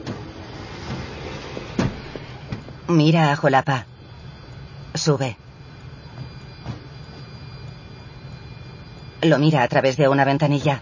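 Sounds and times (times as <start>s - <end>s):
tram pulling away with low rolling rumble: 0.0s - 3.7s
speech: 2.9s - 3.9s, 5.0s - 5.4s, 9.2s - 10.8s.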